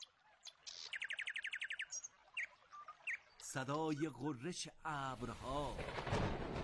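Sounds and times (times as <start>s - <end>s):
nightingale singing: 0.0s - 4.3s
speech: 3.5s - 6.5s.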